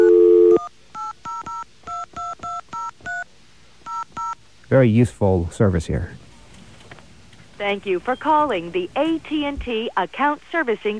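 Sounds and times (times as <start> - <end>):
touch-tone dialing beeps: 0.0 - 3.3, 3.9 - 4.4
speech: 4.7 - 6.2, 7.6 - 10.9.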